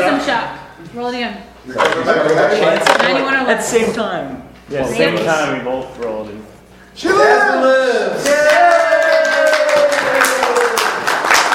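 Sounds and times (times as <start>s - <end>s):
speech: 0.2s - 8.8s
crowd applauding: 8.2s - 11.5s.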